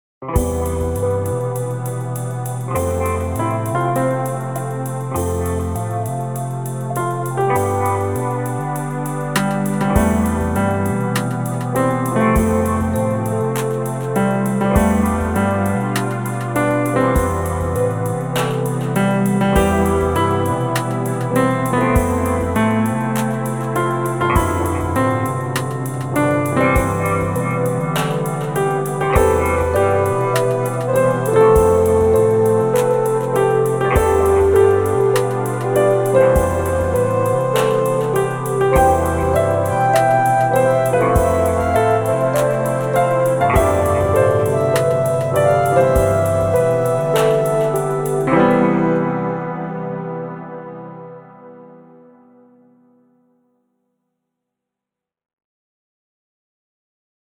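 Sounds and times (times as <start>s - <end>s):
chill out karaoke version of a birthday song: 0.4s - 50.2s.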